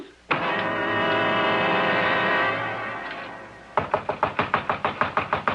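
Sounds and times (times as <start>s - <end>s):
steady droning noise: 0.2s - 3.8s
pounding on a door: 3.8s - 5.5s.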